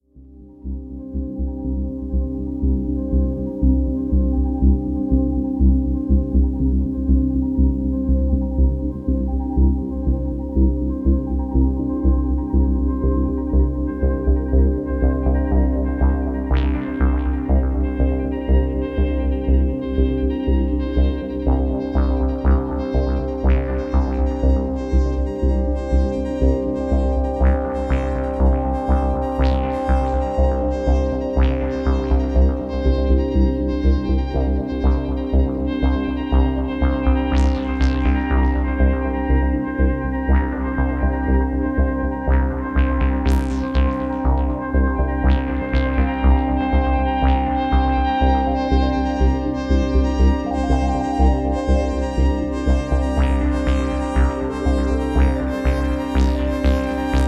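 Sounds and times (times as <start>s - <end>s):
Hohner KS49 synthesizer with Doepfer DarkTime sequencer: 0.0s - 57.2s.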